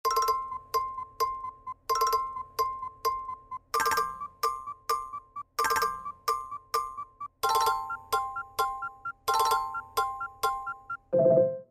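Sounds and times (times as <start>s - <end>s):
iPhone 15 chirp: 0.0s - 11.5s.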